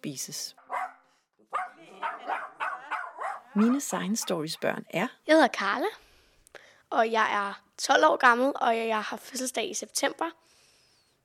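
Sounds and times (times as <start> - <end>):
speech: 0.0 - 0.6, 3.6 - 6.0, 6.9 - 10.5
dog barking: 0.6 - 4.8.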